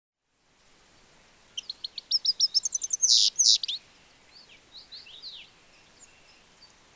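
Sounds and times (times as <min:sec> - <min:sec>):
European goldfinch twittering, Carduelis carduelis: 0:01.5 - 0:06.9.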